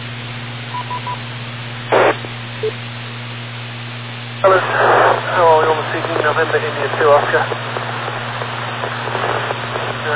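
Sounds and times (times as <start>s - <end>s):
steady low electrical hum: 0.0s - 10.1s
telephone call-waiting beeps: 0.7s - 1.2s
burst of static: 1.9s - 2.8s, 4.2s - 10.1s
speech: 2.6s - 2.9s, 6.2s - 7.8s.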